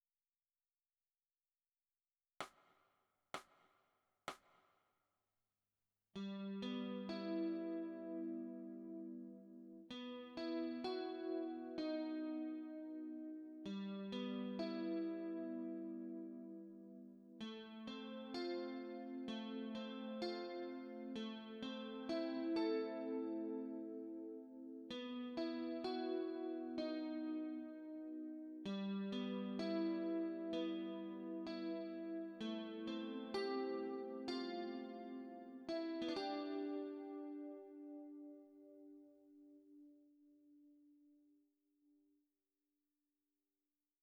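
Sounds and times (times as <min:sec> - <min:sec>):
chorus guitar: 0:06.2 - 0:40.0.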